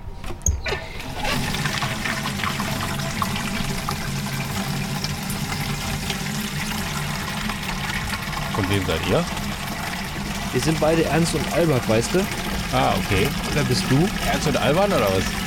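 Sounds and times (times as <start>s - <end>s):
water from a tap filling a canister: 1.2s - 15.4s
speech: 8.7s - 9.4s, 10.5s - 15.4s.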